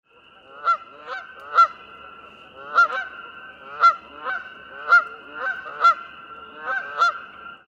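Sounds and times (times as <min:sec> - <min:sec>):
goose calling in alarm: 0:00.5 - 0:01.8, 0:02.6 - 0:07.3.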